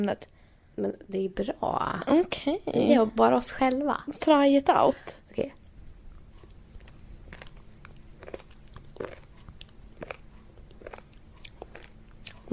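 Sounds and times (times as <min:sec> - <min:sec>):
speech: 0:00.0 - 0:05.6
muesli being chewed: 0:06.2 - 0:12.5.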